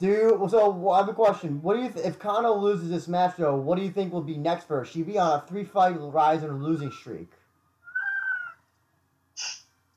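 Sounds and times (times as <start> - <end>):
speech: 0.0 - 7.4
cat meowing: 8.0 - 8.6.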